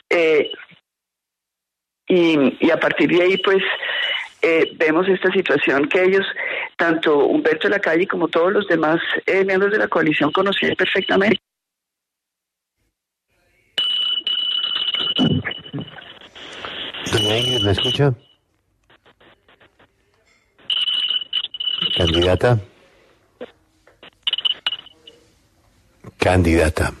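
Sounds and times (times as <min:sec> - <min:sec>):
speech: 0:00.2 - 0:00.6, 0:02.1 - 0:11.4, 0:17.4 - 0:18.3, 0:22.0 - 0:22.7, 0:26.2 - 0:26.9
alarm clock ringing with shrill little bells: 0:13.8 - 0:15.2, 0:20.7 - 0:22.6.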